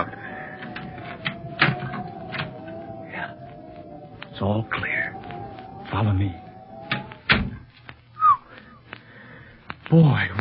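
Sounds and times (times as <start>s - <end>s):
recently oiled door opening and shutting: 0.0s - 7.7s
speech: 4.4s - 5.0s, 5.9s - 6.4s, 9.9s - 10.4s.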